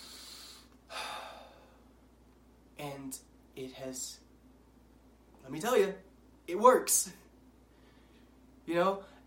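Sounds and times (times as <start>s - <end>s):
person with a slightly stuffy nose breathing in deeply through the nose: 0.0s - 1.8s
speech: 3.0s - 4.2s, 5.4s - 7.2s, 8.7s - 9.1s.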